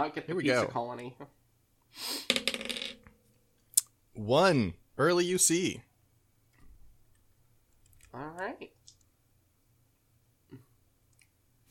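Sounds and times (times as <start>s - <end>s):
speech: 0.0s - 2.6s, 4.2s - 5.9s, 8.2s - 8.8s
dice rolling on a hard tabletop: 2.3s - 3.2s.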